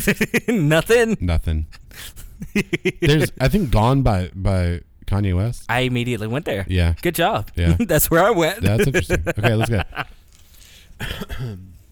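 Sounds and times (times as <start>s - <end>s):
laughter: 0.0s - 1.0s, 1.9s - 3.7s, 7.5s - 10.2s
speech: 0.0s - 10.2s, 11.0s - 11.8s
person clearing throat: 11.0s - 11.8s.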